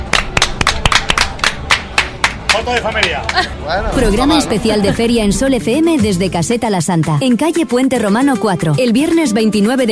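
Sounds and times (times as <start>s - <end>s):
short burst of applause with sharp hand claps: 0.1s - 3.5s
speech: 2.6s - 9.8s.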